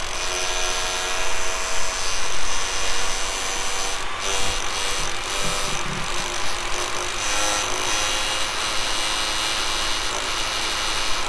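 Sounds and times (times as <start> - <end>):
Vaio fan whirring: 0.1 - 11.2
rubbing: 4.3 - 6.7.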